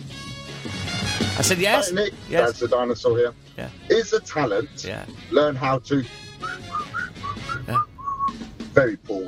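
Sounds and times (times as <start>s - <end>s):
speech: 1.4s - 6.2s, 7.7s - 7.9s, 8.8s - 9.2s
voice and breath noise: 4.8s - 5.1s, 7.6s - 7.9s
person whistling a wobbly breathy tune: 6.4s - 8.4s.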